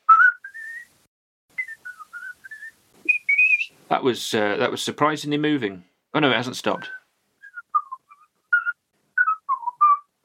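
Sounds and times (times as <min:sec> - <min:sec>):
person whistling a theme tune: 0:00.0 - 0:00.9, 0:01.6 - 0:03.7, 0:06.8 - 0:10.1
speech: 0:03.9 - 0:07.0.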